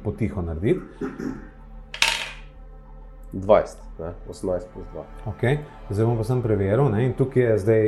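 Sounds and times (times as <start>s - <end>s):
speech: 0.1s - 1.6s, 3.3s - 7.8s
d20 die rolled for a stealth check clattering on a hard tabletop: 2.0s - 2.5s.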